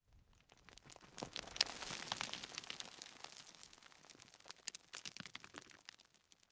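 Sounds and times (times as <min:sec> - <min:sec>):
rocks, pebbles and dust debris tumbling and rolling: 0:00.0 - 0:06.5.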